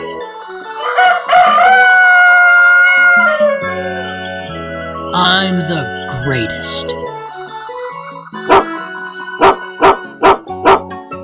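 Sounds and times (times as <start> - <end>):
light tune: 0.0 - 11.2
rooster crowing: 0.8 - 3.7
speech: 5.5 - 7.0
dog barking: 8.5 - 8.7, 9.4 - 10.9.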